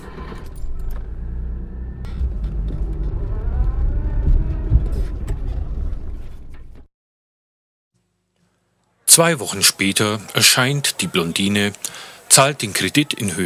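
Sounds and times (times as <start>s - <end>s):
car engine rumbling while driven into an underground garage: 0.0s - 6.9s
speech: 9.2s - 13.4s.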